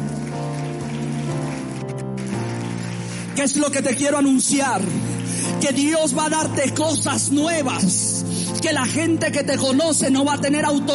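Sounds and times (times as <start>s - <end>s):
audience applauding: 0.0s - 6.2s
speech: 3.4s - 10.9s.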